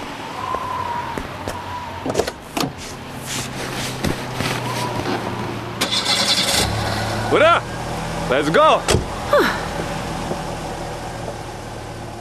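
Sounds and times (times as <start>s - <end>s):
car engine starting after cooling down: 1.6s - 12.1s
speech: 7.3s - 7.7s, 8.3s - 9.6s.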